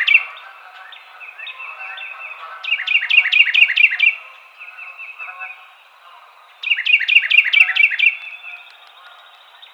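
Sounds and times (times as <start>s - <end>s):
Carolina wren singing: 0.0s - 9.7s.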